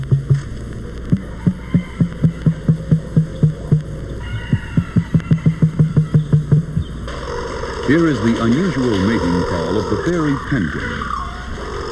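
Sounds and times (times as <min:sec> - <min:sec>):
zoo emu thumping produced in its breast: 0:00.0 - 0:10.2
speech: 0:07.9 - 0:11.1.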